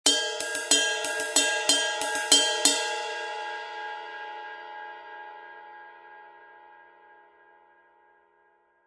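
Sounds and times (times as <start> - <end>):
20in Custom Projection ride cymbal: 0.1 - 3.3.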